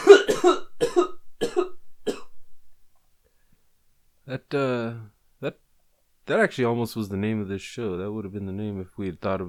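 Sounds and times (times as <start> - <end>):
harsh coughing: 0.0 - 2.4
speech: 0.4 - 0.6, 4.5 - 5.6, 6.3 - 9.4.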